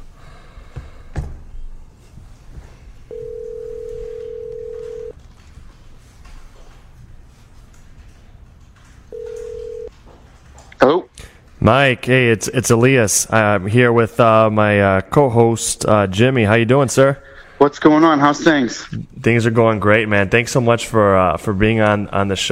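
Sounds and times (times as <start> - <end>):
telephone line tones while someone is being called: 3.1 - 5.2, 9.1 - 9.9
speech: 11.7 - 22.5.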